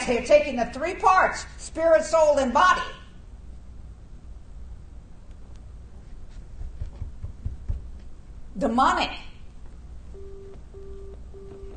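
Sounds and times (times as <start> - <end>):
speech: 0.0 - 3.0, 8.6 - 9.3
hiss and rumble: 0.0 - 11.7
phone line busy signal beeps: 10.2 - 11.7.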